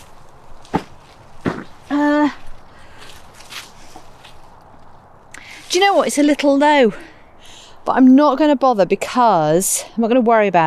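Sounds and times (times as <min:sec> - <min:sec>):
soft footsteps stepping over into a garden bed: 0:00.0 - 0:05.9
speech: 0:05.8 - 0:07.1, 0:07.9 - 0:10.6.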